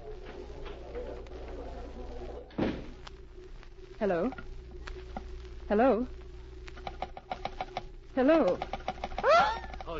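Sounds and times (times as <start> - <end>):
steady low room hum: 0.0 - 9.9
door closing with a single dull thud: 2.5 - 3.0
speech: 4.0 - 4.5, 5.7 - 6.2, 8.2 - 8.8.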